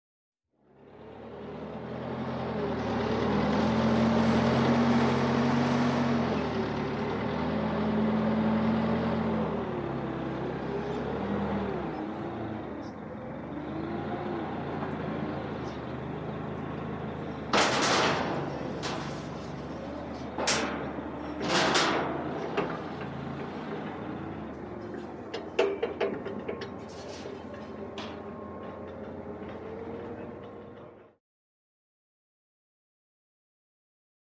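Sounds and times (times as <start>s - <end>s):
heavy loader: 0.7s - 31.2s.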